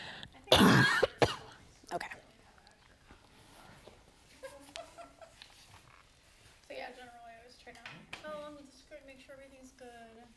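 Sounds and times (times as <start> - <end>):
harsh raspy cough: 0.5 - 1.5.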